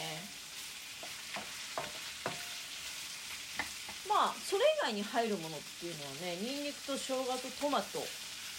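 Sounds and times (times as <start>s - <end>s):
two onions sizzling in a hot pan over high heat: 0.0s - 8.5s
spatula scraping while stirring onions in a pan: 0.3s - 4.0s
speech: 4.2s - 8.2s.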